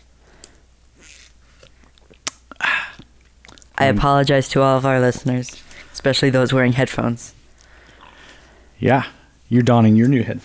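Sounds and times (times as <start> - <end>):
person sipping a salted caramel latte: 0.0 - 4.0, 5.5 - 6.1, 7.3 - 9.4
soft wet mouth clicks and swallows: 0.0 - 4.0, 7.3 - 8.8
speech: 3.8 - 7.4, 8.8 - 10.4.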